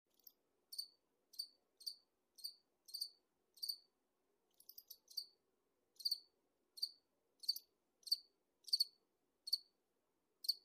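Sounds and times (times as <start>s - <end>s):
cricket chirping in short high pulsed bursts: 0.1s - 3.9s, 4.5s - 5.4s, 6.0s - 9.7s, 10.4s - 10.6s.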